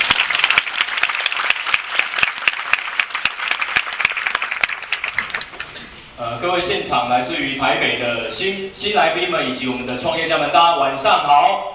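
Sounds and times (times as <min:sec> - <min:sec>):
audience applause welcoming a speaker at an evening business presentation: 0:00.0 - 0:05.8
speech: 0:06.2 - 0:11.7.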